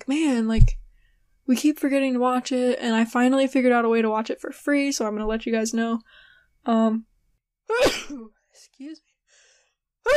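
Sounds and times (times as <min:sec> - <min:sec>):
speech: 0:00.1 - 0:00.8, 0:01.5 - 0:07.1, 0:07.7 - 0:09.1
faint breathy sounds: 0:06.0 - 0:06.6
person sneezing: 0:07.7 - 0:08.3.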